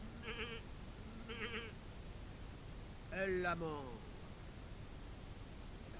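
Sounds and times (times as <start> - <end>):
steady low hiss: 0.0 - 5.9
old goat bleating: 0.1 - 0.6, 1.2 - 1.8
speech: 0.4 - 1.9, 3.1 - 4.1.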